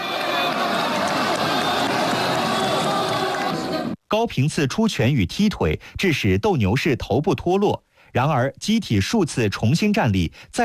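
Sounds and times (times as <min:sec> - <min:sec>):
arena crowd cheering at a robot combat match: 0:00.0 - 0:04.0
speech: 0:04.1 - 0:10.6.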